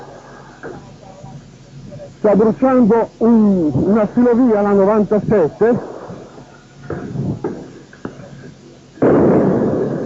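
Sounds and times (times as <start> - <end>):
outdoor street riot commotion: 0.0 - 10.0
speech: 0.6 - 1.0, 2.2 - 5.9
hand grenade explosive bangs during street riot: 5.8 - 8.2, 9.0 - 10.0.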